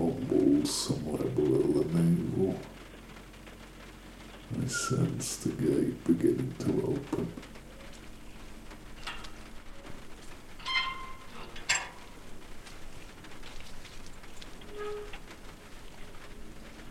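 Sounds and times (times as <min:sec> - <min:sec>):
heavy rain pattering on soaked leaves: 0:00.0 - 0:16.9
speech: 0:00.6 - 0:01.0, 0:04.5 - 0:07.5
rain splashes and drips: 0:07.5 - 0:16.9.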